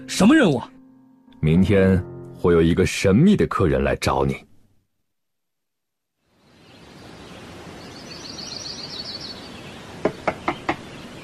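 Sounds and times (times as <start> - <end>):
speech: 0.0 - 0.8, 1.4 - 4.5
steady hiss of room noise: 6.2 - 11.2
faint bird chirps: 6.4 - 11.2
quick sharp knocking on a door: 10.0 - 10.9.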